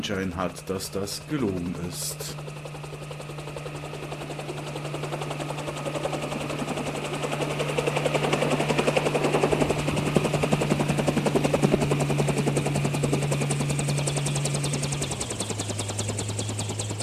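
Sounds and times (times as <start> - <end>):
speech: 0.0 - 2.8
landed helicopter rotors thumping: 0.0 - 17.0.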